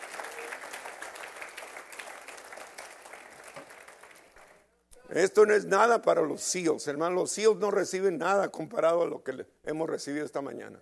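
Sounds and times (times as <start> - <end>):
audience applauding: 0.0 - 4.6
speech: 5.1 - 10.7.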